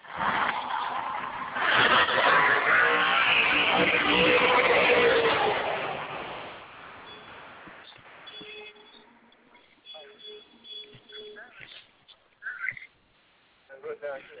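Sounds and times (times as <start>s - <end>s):
drag race car engine roaring during a burnout in the burnout box: 0.0s - 10.4s
drag race car tires screeching during a burnout: 0.0s - 13.0s.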